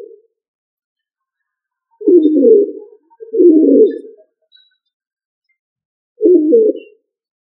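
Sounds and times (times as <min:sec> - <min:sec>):
pigeon cooing: 0:02.0 - 0:04.3, 0:06.2 - 0:07.0.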